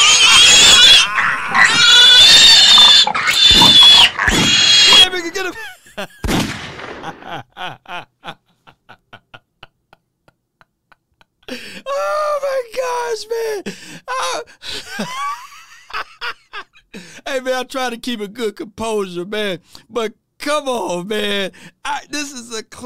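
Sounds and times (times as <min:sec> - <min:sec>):
pig squealing and grunting: 0:00.0 - 0:05.4
laughter: 0:05.0 - 0:10.0, 0:14.6 - 0:16.8
speech: 0:17.6 - 0:22.8.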